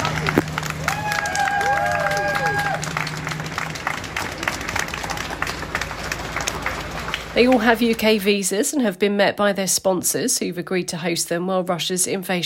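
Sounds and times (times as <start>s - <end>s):
crowd cheering and clapping outdoors at Hartley Country Club near Dartford, Kent: 0.0s - 8.0s
low hum: 0.0s - 8.6s
people shouting: 0.8s - 3.0s
speech: 7.4s - 12.4s.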